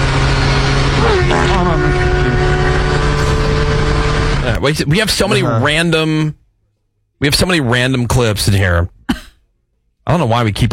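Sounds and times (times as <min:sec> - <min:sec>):
motorcycle engine roaring past at high speed: 0:00.0 - 0:04.6
rough buzzing hum: 0:01.0 - 0:04.4
speech: 0:04.6 - 0:06.4, 0:07.2 - 0:09.2, 0:10.1 - 0:10.7.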